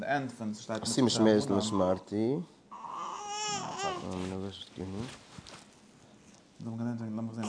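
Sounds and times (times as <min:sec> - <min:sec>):
speech: 0:00.0 - 0:02.6, 0:03.9 - 0:05.2, 0:06.6 - 0:07.4
baby babbling and fussing: 0:02.7 - 0:04.3.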